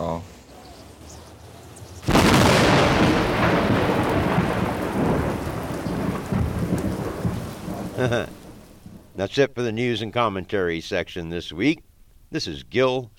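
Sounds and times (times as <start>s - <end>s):
steady rain hissing: 0.0s - 10.8s
thunderclap rolling into a long loud rumble: 2.0s - 9.2s
speech: 8.0s - 8.4s, 9.2s - 13.1s.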